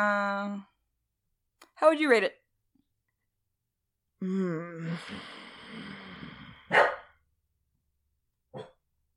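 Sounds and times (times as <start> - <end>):
speech: 0.0 - 0.7, 1.8 - 2.4, 4.2 - 5.4, 6.7 - 7.0
dog barking sharply: 6.7 - 7.1.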